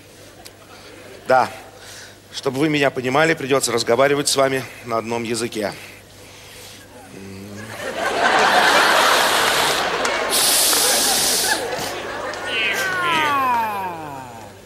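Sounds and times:
laughter: 0.6 - 1.3, 7.4 - 14.6
speech: 1.3 - 1.6, 2.4 - 6.0
human voice hissing like a cat: 10.3 - 11.7, 12.5 - 14.6
human voice mimicking cats meowing: 12.4 - 14.6.

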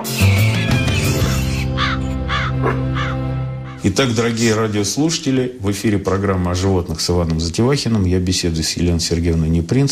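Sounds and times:
music: 0.0 - 6.8
crow cawing: 0.9 - 3.8
speech: 3.8 - 9.8.

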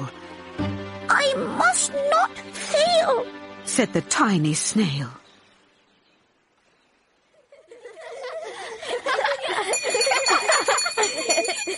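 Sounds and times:
speech: 1.3 - 5.2
children chattering and giggling: 7.3 - 11.7
school bell ringing at a school by a bay: 9.7 - 11.7.

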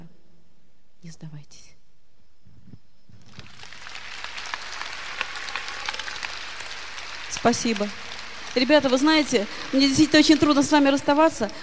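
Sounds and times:
speech: 1.0 - 1.8, 7.4 - 11.6
audience applause: 3.3 - 11.6.

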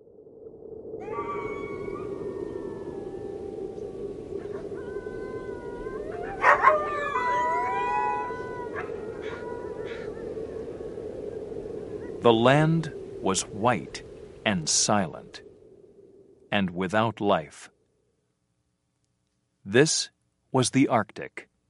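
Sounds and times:
steady rush of wind: 0.0 - 16.6
several wolves howling in chorus: 1.0 - 11.0
speech: 12.2 - 15.5, 16.5 - 17.7, 19.7 - 21.5.

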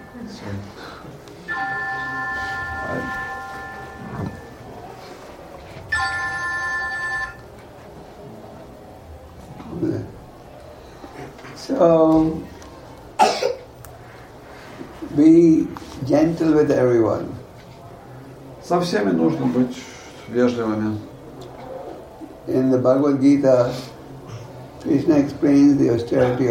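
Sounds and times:
murmuring: 0.0 - 26.5
speech: 0.3 - 1.7, 11.8 - 12.5, 15.2 - 17.3, 18.7 - 21.1, 22.4 - 23.9, 24.8 - 26.5
phone ringing in electronic tone bursts: 1.4 - 5.0, 5.9 - 7.5
people coughing: 13.2 - 13.8.

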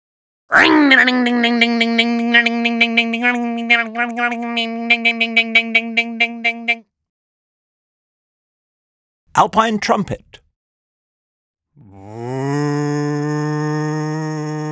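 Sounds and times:
voice imitating a motorbike engine starting: 0.5 - 6.8, 11.8 - 14.6
speech: 0.6 - 6.9, 9.4 - 10.4.

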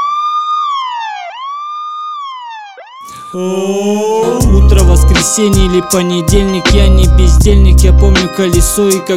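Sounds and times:
police siren wailing: 0.0 - 6.3
speech: 3.3 - 9.1.

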